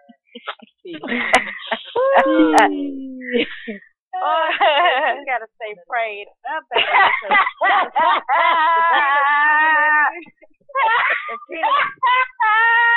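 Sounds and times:
laughter: 0:00.4 - 0:05.3, 0:06.7 - 0:12.9
speech: 0:00.9 - 0:01.6, 0:02.2 - 0:09.8
person screaming and hollering: 0:02.0 - 0:03.4, 0:08.3 - 0:10.1, 0:10.8 - 0:12.9.

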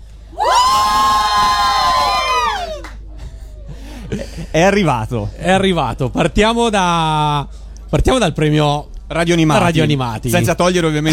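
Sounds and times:
group of contest finalists and winners shouting and cheering: 0:00.3 - 0:03.0
speech: 0:04.6 - 0:11.1.

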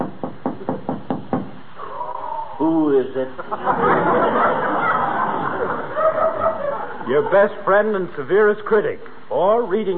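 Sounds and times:
knocking on a door: 0:00.0 - 0:01.6
speech: 0:02.6 - 0:04.9, 0:05.6 - 0:09.9
laughter: 0:03.2 - 0:07.6.

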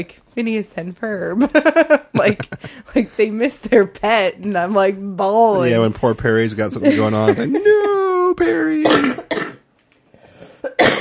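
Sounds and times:
speech: 0:00.0 - 0:09.2
laughter: 0:01.4 - 0:03.2, 0:06.7 - 0:08.3
person coughing: 0:08.8 - 0:09.6, 0:10.6 - 0:10.9.

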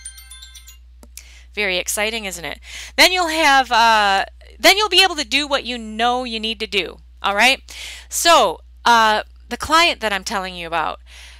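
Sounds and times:
phone alarm ringtone with repeating electronic tones: 0:00.0 - 0:00.8
speech: 0:01.6 - 0:11.3.

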